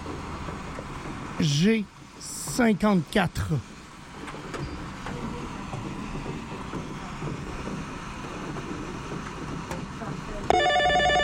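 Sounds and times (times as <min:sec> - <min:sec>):
speech: 0:01.4 - 0:03.7
telephone ringing with a bright electronic trill: 0:10.5 - 0:11.2.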